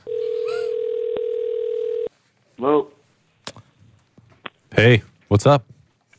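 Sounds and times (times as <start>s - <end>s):
telephone dialing tone: 0.0s - 2.1s
speech: 4.8s - 5.7s.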